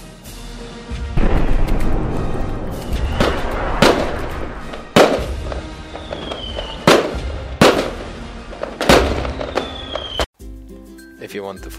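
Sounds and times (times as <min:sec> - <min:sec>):
constant low rumble: 0:01.2 - 0:05.6
fireworks booming with crackling tails: 0:01.2 - 0:10.3
faint rising fireworks whistle: 0:02.7 - 0:07.8, 0:08.9 - 0:10.3
speech: 0:11.3 - 0:11.7.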